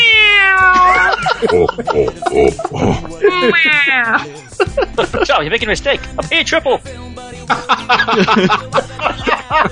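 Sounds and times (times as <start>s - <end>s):
cat meowing: 0.0s - 1.1s, 3.3s - 4.2s
laughter: 0.7s - 5.6s, 7.4s - 9.6s
speech: 1.4s - 9.6s.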